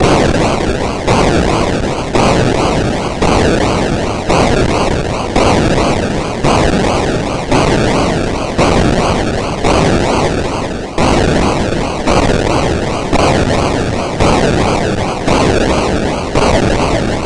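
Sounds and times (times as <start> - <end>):
banging drone: 0.0 - 17.2.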